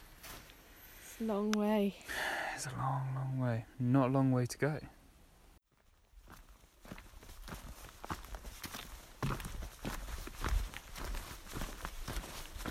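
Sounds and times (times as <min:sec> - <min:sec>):
footsteps of a long-distance walker outdoors at midday: 0:00.0 - 0:00.7, 0:05.7 - 0:12.6
speech: 0:01.2 - 0:05.0.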